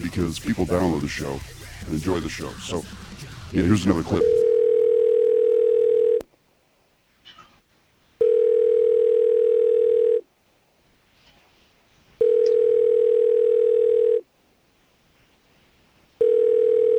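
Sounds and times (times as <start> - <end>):
speech: 0.1 - 4.4
telephone ringback tone: 4.2 - 6.2, 8.2 - 10.2, 12.2 - 14.2, 16.2 - 16.9.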